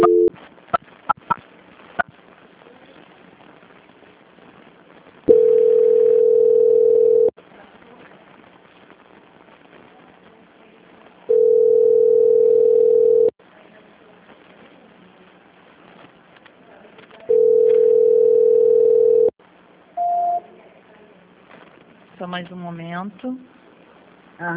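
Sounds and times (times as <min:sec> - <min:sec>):
telephone line tone during a call transfer: 0:00.0 - 0:00.3, 0:05.3 - 0:07.4, 0:11.3 - 0:13.3, 0:17.3 - 0:19.3, 0:20.0 - 0:20.4
faint hiss: 0:00.4 - 0:06.4, 0:07.3 - 0:11.8, 0:13.3 - 0:17.6, 0:19.3 - 0:24.5
brief higher-pitched beep: 0:20.0 - 0:20.4
speech: 0:22.4 - 0:23.6, 0:24.4 - 0:24.5.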